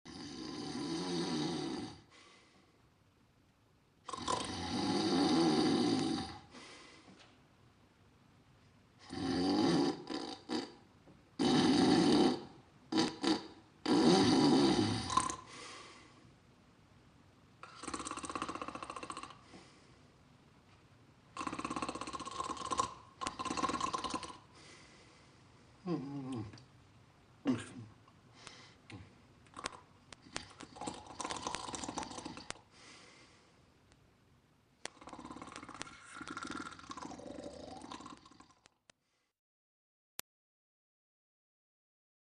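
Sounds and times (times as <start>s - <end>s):
person snoring: 0.1s - 2.2s, 4.1s - 6.7s, 9.0s - 10.8s, 11.4s - 16.1s, 17.6s - 19.7s, 21.4s - 24.9s, 25.8s - 26.6s, 27.4s - 33.4s, 34.9s - 38.8s.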